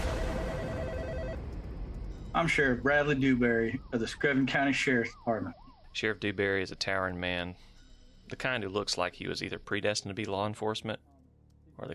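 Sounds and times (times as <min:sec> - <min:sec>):
electronic telephone ring tone on an outgoing call: 0:00.2 - 0:01.4
speech: 0:02.3 - 0:07.7, 0:08.3 - 0:11.1, 0:11.8 - 0:11.9.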